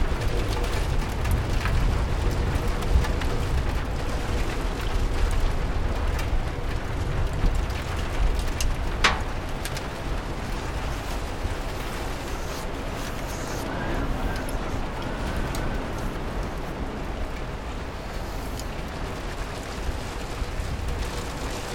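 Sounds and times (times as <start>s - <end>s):
deep rumble: 0.0s - 21.6s
steady rain pattering against a window: 0.0s - 21.7s
faint higher murmur: 11.5s - 18.3s.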